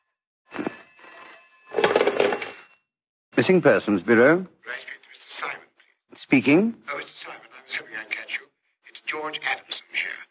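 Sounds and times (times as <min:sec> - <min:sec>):
telephone bell ringing: 0:00.0 - 0:02.9
speech: 0:03.4 - 0:04.9, 0:06.2 - 0:08.4, 0:09.1 - 0:10.2.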